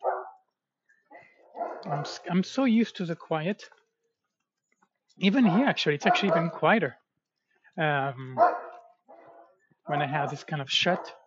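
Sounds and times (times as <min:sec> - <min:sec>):
dogs barking: 0:00.0 - 0:00.4, 0:01.2 - 0:02.3, 0:05.3 - 0:06.7, 0:08.4 - 0:11.2
speech: 0:01.8 - 0:03.8, 0:05.2 - 0:07.0, 0:07.8 - 0:08.6, 0:09.9 - 0:11.2.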